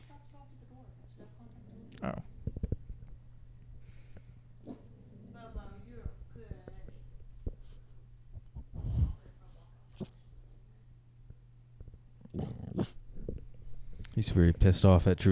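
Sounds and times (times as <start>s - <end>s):
steady hum: 0.0s - 15.3s
dog growling: 1.2s - 9.2s, 12.1s - 14.6s
speech: 2.0s - 2.3s, 14.2s - 15.3s.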